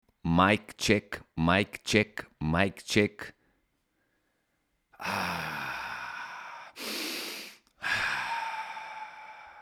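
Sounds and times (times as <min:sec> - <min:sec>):
speech: 0:00.4 - 0:03.4, 0:05.0 - 0:05.6
deep breathing: 0:04.0 - 0:09.6.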